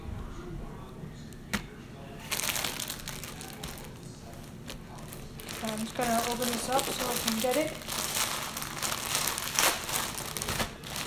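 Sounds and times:
paper towel used for tortillas crinkling and rustling: 2.2s - 11.0s
speech: 5.8s - 8.0s.

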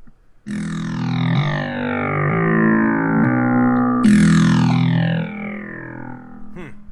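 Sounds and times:
harsh buzzing FM-synthesized tone from a Sega Genesis soundtrack: 0.5s - 6.8s.

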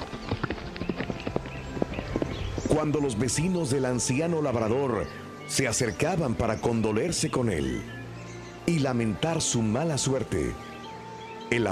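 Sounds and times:
old work horse hooves clip-clopping: 0.0s - 4.6s
speech: 2.7s - 8.0s, 8.7s - 10.7s, 11.5s - 11.7s.

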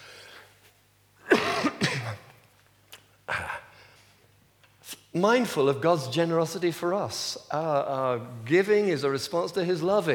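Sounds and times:
person coughing forcefully: 1.2s - 2.3s
speech: 5.2s - 10.1s.

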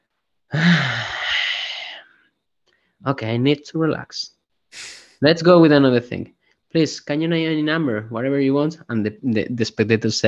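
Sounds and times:
voice imitating one long deep breath: 0.5s - 2.2s, 4.7s - 5.2s
speech: 3.0s - 10.2s.

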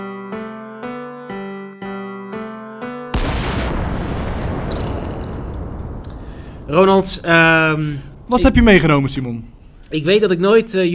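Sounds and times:
short musical chords: 0.0s - 3.4s
loud cannon boom with long rumbling roar: 3.1s - 9.8s
speech: 6.7s - 10.9s.

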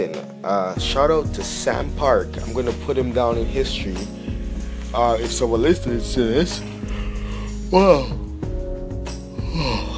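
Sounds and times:
speech: 0.0s - 4.3s, 4.9s - 6.7s, 7.7s - 8.2s
sighing exhale: 6.8s - 8.3s, 9.4s - 9.9s
person yawning: 9.4s - 9.9s.

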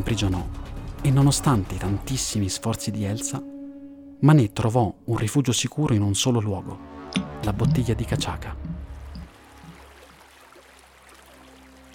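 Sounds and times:
speech: 0.0s - 3.5s, 4.2s - 8.7s
water trickling: 7.2s - 11.9s.

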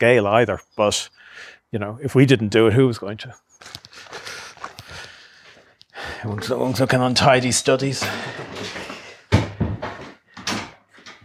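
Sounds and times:
speech: 0.0s - 4.2s, 6.2s - 8.8s
heavy house front door opening and closing with thuds and creaks: 7.8s - 11.2s.

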